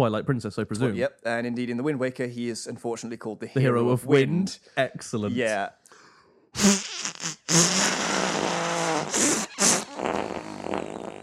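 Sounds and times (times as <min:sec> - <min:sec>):
speech: 0:00.0 - 0:05.8, 0:06.6 - 0:06.9
person blowing loud buzzy fart-like raspberries: 0:06.6 - 0:11.2.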